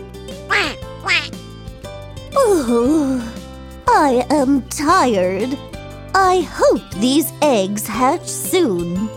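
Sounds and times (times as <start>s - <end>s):
duck quacking: 0.5s - 1.4s
speech: 2.5s - 9.1s.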